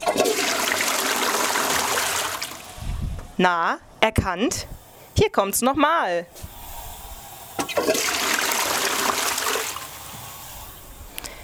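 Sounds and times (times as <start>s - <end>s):
toilet flushing: 0.0s - 2.8s, 6.3s - 10.9s
speech: 3.4s - 6.5s.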